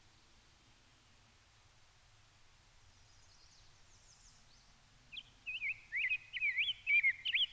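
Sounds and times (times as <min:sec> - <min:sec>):
Rose-breasted grosbeak Pheucticus ludovicianus singing in Minnesota: 0:03.1 - 0:07.5.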